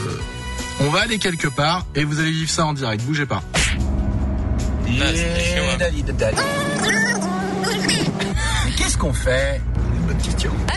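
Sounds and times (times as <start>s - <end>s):
speech: 0.8s - 3.9s, 4.9s - 7.3s, 9.0s - 10.7s
road drone inside a moving car: 3.5s - 10.7s
car engine rumble heard inside a car climbing uphill: 3.6s - 10.7s.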